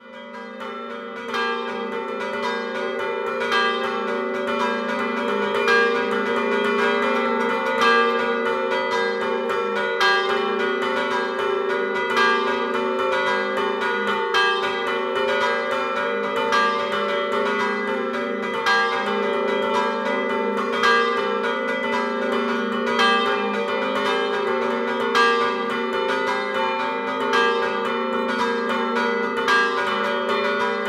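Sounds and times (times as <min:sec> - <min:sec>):
bells ringing: 0:00.0 - 0:30.8.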